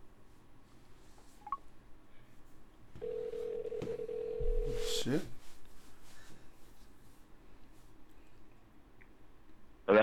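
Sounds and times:
steady continuous call tone from a phone line: 3.0 - 5.1
speech: 5.0 - 5.4.

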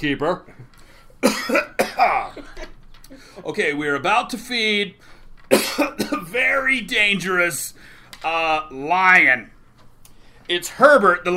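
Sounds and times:
speech: 0.0 - 9.6, 10.5 - 11.3
person coughing: 1.2 - 3.3, 5.5 - 6.3.

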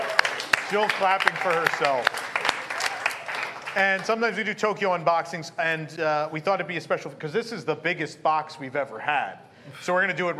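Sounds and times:
single person clapping: 0.0 - 4.2
speech: 0.7 - 2.2, 3.7 - 10.3.

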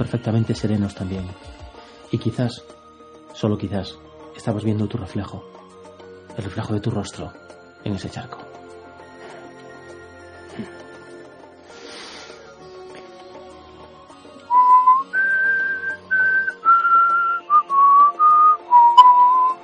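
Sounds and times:
speech: 0.0 - 2.8, 3.4 - 5.5, 6.4 - 8.5, 10.6 - 10.8
person whistling a simple melody: 14.5 - 19.6.

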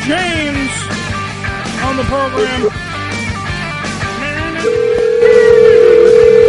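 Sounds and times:
speech: 0.0 - 0.9, 1.9 - 2.9, 4.6 - 5.4
touch-tone telephone dialing tone: 4.6 - 6.4.

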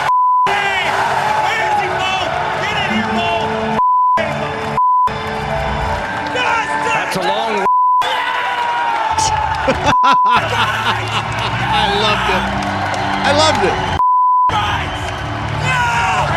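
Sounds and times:
steady pure-tone censor bleeps: 0.0 - 0.5, 14.0 - 14.5
rowdy crowd celebrating with cheering and screaming: 0.0 - 16.3
laughter: 9.2 - 13.9
speech: 10.0 - 12.6, 13.2 - 13.8.

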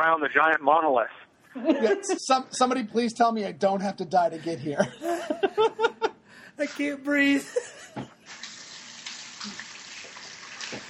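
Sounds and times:
speech: 0.0 - 6.0, 6.6 - 7.8
laughter: 1.6 - 2.4, 4.4 - 6.2, 7.4 - 8.0
water running from a tap: 8.2 - 10.8.

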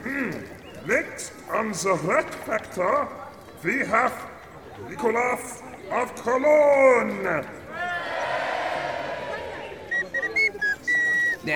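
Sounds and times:
murmuring crowd-like noise: 0.0 - 11.5
speech: 0.9 - 7.6
thin feeble little whistle: 9.7 - 11.5.

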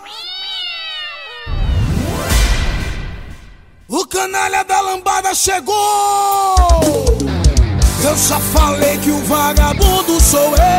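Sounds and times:
cat meowing: 0.0 - 1.8
rumbling whoosh: 1.5 - 3.9
speech: 4.2 - 7.4, 8.0 - 10.7.

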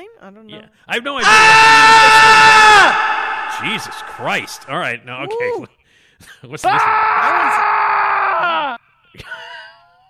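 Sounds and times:
speech: 0.2 - 7.6, 8.4 - 9.5
high strained scream sound effect: 1.2 - 4.9, 6.7 - 8.5.

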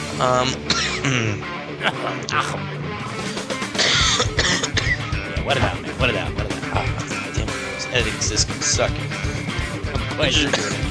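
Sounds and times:
person coughing: 0.2 - 2.5, 3.7 - 5.7, 10.4 - 10.8
throat clearing: 0.2 - 2.6, 3.7 - 5.7, 10.4 - 10.8
person mumbling: 0.2 - 2.8, 4.1 - 8.0, 10.4 - 10.8
speech: 0.2 - 2.8, 5.5 - 6.4, 7.9 - 9.3, 10.2 - 10.8
laughter: 0.7 - 2.9, 4.0 - 10.8.

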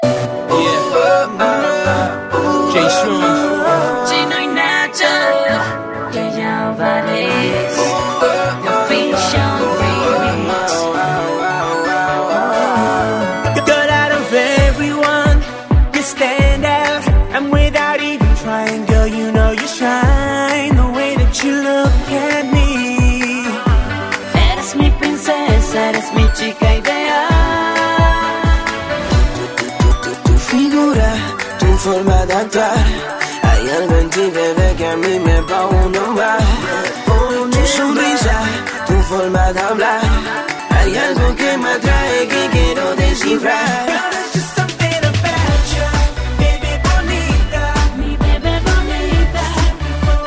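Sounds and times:
Latin pop song intro: 0.0 - 50.2
layered synths: 0.0 - 50.2
thumping beat: 14.6 - 50.2
speech: 40.8 - 44.4.

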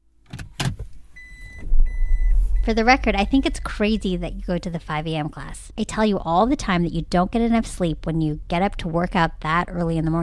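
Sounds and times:
faint electric whine: 0.0 - 10.2
car door clunks: 0.2 - 3.0
rustling: 0.2 - 8.5
low car engine rumble as the car pulls away: 0.7 - 10.2
speech: 2.6 - 10.2.

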